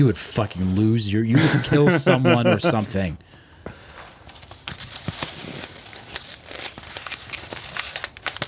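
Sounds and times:
speech: 0:00.0 - 0:03.4
laughter: 0:01.3 - 0:03.2
paper notes being crumpled up: 0:04.2 - 0:08.4.

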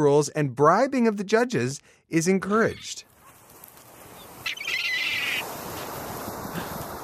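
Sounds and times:
speech: 0:00.0 - 0:03.1
shrill drawn-out seagull call: 0:04.1 - 0:05.8.

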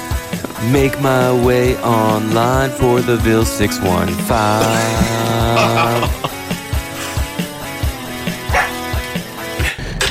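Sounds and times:
steady rhythmic beat: 0:00.2 - 0:09.3
speech: 0:00.6 - 0:06.4
laughter: 0:04.4 - 0:06.7
dog barking: 0:08.4 - 0:08.9.

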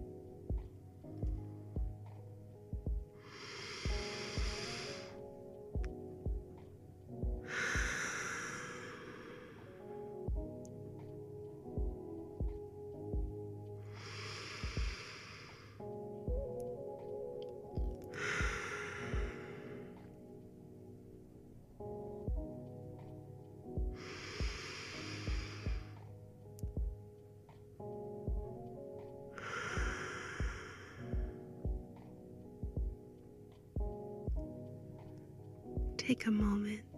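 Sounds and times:
quiet sustained music: 0:00.0 - 0:36.9
slow deep breathing during a guided relaxation exercise: 0:03.2 - 0:05.4, 0:07.4 - 0:09.9, 0:13.8 - 0:15.8, 0:18.1 - 0:20.2, 0:24.0 - 0:26.0, 0:29.4 - 0:31.5
speech: 0:36.2 - 0:36.8.

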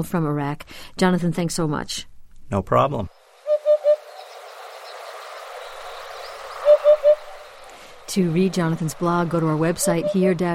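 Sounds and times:
speech: 0:00.0 - 0:03.2, 0:08.2 - 0:10.5
outdoor ambience: 0:00.0 - 0:10.5
hoopoe calling: 0:03.4 - 0:10.5.

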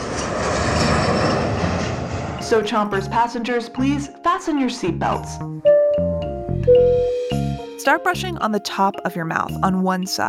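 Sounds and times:
airplane engine roar: 0:00.0 - 0:04.0
speech: 0:02.5 - 0:07.1, 0:07.8 - 0:10.2.

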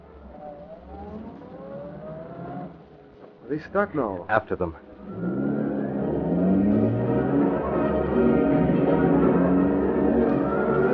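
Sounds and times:
car engine revving and driving off through gear changes: 0:00.0 - 0:03.1, 0:04.9 - 0:10.9
speech: 0:03.5 - 0:05.3.

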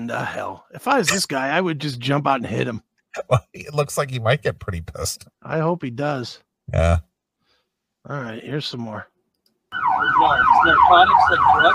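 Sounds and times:
speech: 0:00.0 - 0:07.1, 0:08.0 - 0:09.1, 0:09.7 - 0:11.7
ambulance siren wailing and passing by: 0:09.7 - 0:11.7.

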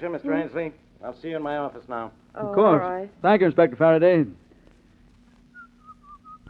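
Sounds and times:
speech: 0:00.0 - 0:04.4
low hum: 0:00.0 - 0:06.4
person whistling a lilting folk tune: 0:05.6 - 0:06.4.

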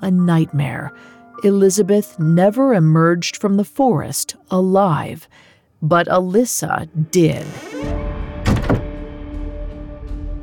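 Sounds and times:
speech: 0:00.0 - 0:08.1
door swinging shut with a solid thunk: 0:07.4 - 0:09.0
door latch catching: 0:08.4 - 0:08.9.

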